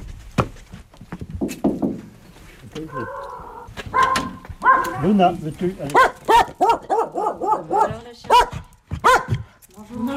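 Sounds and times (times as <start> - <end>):
speech: 2.8 - 3.3, 5.0 - 6.6, 7.6 - 8.6
dog barking sharp yappy barks: 3.9 - 5.1, 5.9 - 9.4.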